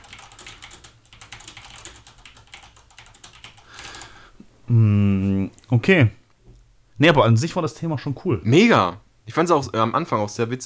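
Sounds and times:
typing on a computer keyboard: 0.0 - 4.1
speech: 4.7 - 6.2, 7.0 - 10.6.

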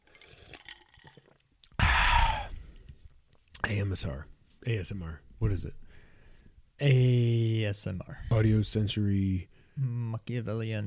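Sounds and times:
person sipping and swallowing water: 0.0 - 3.0
loud breathy satisfied exhale: 1.8 - 2.8
speech: 3.7 - 5.8, 6.8 - 10.8.

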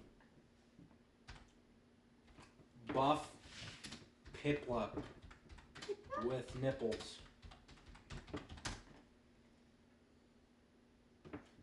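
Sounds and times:
faint steady hum: 0.0 - 11.6
soft key clicks from typing on a computer keyboard: 1.2 - 1.6, 3.8 - 9.0
speech: 3.0 - 3.4, 4.4 - 5.2, 6.2 - 7.3.

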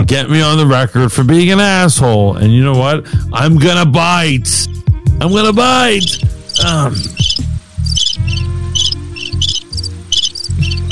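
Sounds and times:
speech: 0.0 - 7.4
crickets chirping: 5.3 - 10.9.

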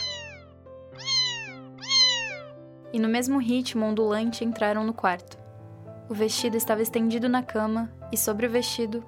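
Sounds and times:
cat meowing in a dim corridor: 0.0 - 2.6
speech: 2.9 - 5.4, 6.1 - 9.0.

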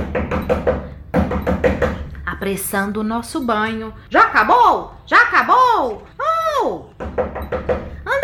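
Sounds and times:
pounding on a door: 0.0 - 2.1, 6.9 - 8.1
speech: 2.5 - 6.9.

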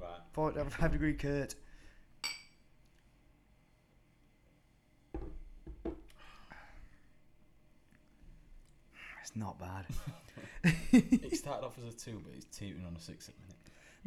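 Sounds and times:
speech: 0.4 - 1.7, 9.3 - 14.0
glass clinking: 2.2 - 2.7
laughter: 9.9 - 11.5.

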